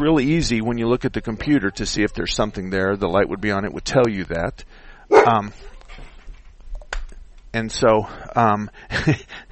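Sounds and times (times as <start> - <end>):
speech: 0.0 - 5.7, 7.6 - 9.4
dog barking at someone at the door: 5.1 - 5.9.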